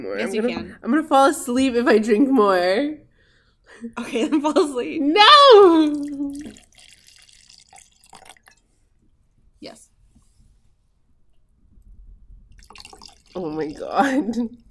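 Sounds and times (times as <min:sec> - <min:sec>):
speech: 0:00.0 - 0:03.0, 0:03.7 - 0:06.7, 0:09.6 - 0:09.9, 0:13.3 - 0:14.6
person crying out: 0:05.2 - 0:06.4
faint drips: 0:05.7 - 0:09.4, 0:11.7 - 0:14.6
liquid spilling and splashing from a bottle: 0:05.8 - 0:08.7, 0:12.5 - 0:14.0
quiet rustling: 0:08.8 - 0:12.1.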